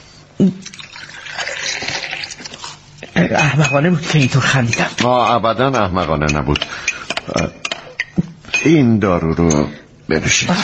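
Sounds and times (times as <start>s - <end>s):
speech: 0.4s - 0.8s, 3.3s - 7.6s, 8.6s - 10.6s
water pouring into a drinking glass: 0.6s - 2.7s.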